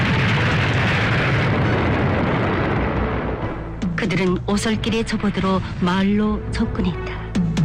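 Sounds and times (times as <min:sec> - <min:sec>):
artillery shells bursting on a wide road near a town: 0:00.0 - 0:03.8
speech: 0:04.0 - 0:07.5.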